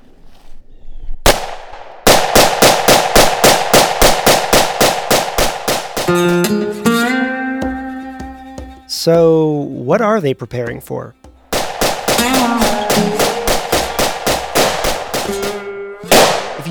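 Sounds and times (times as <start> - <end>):
rapid rifle fire emptying a magazine during militia training: 1.3 - 6.1, 11.5 - 16.6
speech: 6.1 - 6.8, 9.0 - 11.2.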